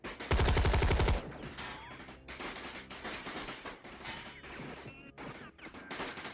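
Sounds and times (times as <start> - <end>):
many guns firing sustained salvos against a sanctuary's walls: 0.0 - 1.6.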